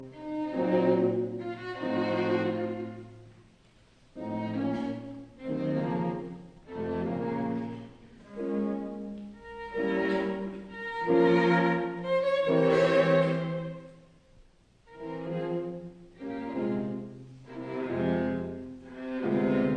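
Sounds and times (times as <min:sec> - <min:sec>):
piano quintet playing: 0:00.0 - 0:19.7.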